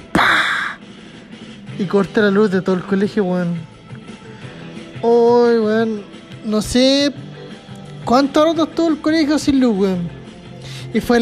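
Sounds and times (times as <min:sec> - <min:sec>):
voice imitating a kicked ball slamming into an electrical box on a light pole: 0:00.2 - 0:00.8
speech: 0:01.8 - 0:03.7, 0:05.0 - 0:07.2, 0:08.0 - 0:10.2, 0:10.9 - 0:11.2.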